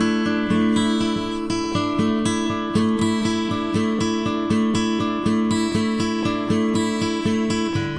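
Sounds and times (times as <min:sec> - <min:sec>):
acoustic guitar picking loop: 0:00.0 - 0:07.9.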